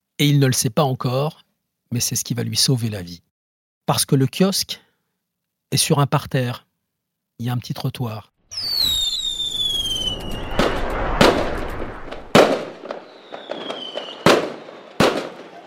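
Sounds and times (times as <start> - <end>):
speech: 0.2 - 3.3, 3.9 - 4.8, 5.7 - 6.7, 7.4 - 8.8
continuous crackling rumble of fireworks: 8.5 - 13.5
firework rockets whistling as they rise: 8.5 - 15.6
fireworks exploding at the close of a display in Nice: 8.5 - 15.6.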